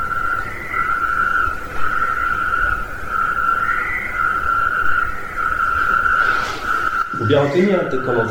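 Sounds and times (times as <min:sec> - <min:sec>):
low hiss: 0:00.0 - 0:08.2
male toad trilling: 0:00.0 - 0:08.2
speech: 0:07.2 - 0:08.2.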